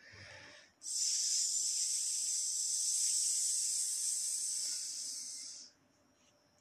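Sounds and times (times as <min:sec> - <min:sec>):
slow hissing exhale during a breathing exercise: 0:00.0 - 0:05.8
short softer breath: 0:00.0 - 0:06.4.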